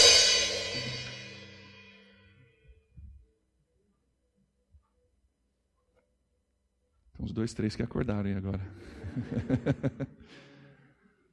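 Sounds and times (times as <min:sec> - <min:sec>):
cymbal struck as a demonstration: 0:00.0 - 0:02.2
speech: 0:07.2 - 0:10.5
laughter: 0:08.5 - 0:10.5.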